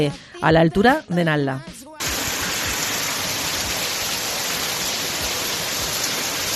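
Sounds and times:
speech: 0.0 - 1.7
hailstorm: 2.0 - 6.5.

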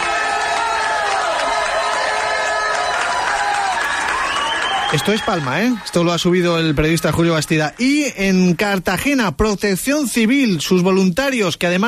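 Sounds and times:
police crowd applauding outdoors: 0.0 - 8.8
speech: 4.9 - 11.8.

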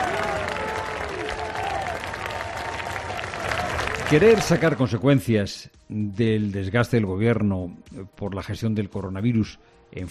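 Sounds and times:
large crowd cheering at the arrival of a king: 0.0 - 5.0
speech: 4.1 - 10.1.

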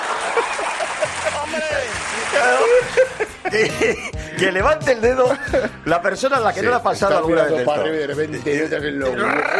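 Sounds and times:
laughter: 0.0 - 4.2
shower water running and splashing: 0.3 - 3.3
speech: 1.5 - 9.5.

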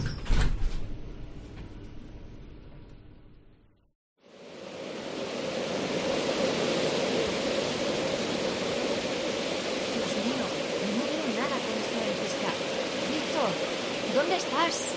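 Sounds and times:
heavy door sliding shut with a long rumbling scrape: 0.0 - 1.9
steady rushing wind-like noise: 4.2 - 14.9.

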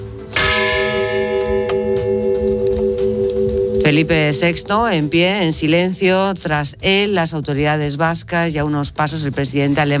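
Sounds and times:
church bells ringing: 0.3 - 6.6
speech: 3.9 - 9.9.

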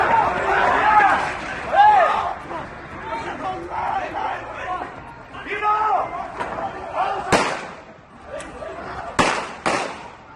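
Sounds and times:
people shouting in the street: 0.0 - 9.3
agitated crowd noise in the street: 0.0 - 10.3
gunshots in the street: 7.3 - 7.8, 9.2 - 10.2.

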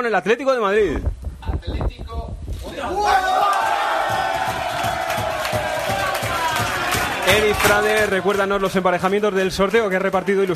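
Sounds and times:
speech: 0.0 - 3.8, 7.3 - 10.5
sharp claps or slaps in a locker room: 3.4 - 10.5.

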